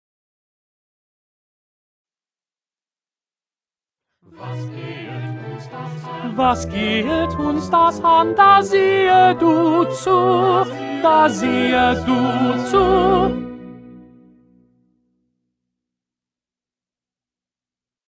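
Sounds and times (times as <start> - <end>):
first tenor voice singing: 4.3 - 13.8.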